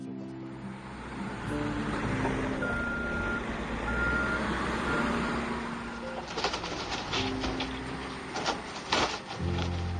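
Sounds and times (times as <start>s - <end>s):
heavy excavator engine rumbling: 0.0s - 9.9s
excavator reversing alarm beeping: 2.6s - 5.3s
sharp cracking and crunching bursts: 6.2s - 9.9s.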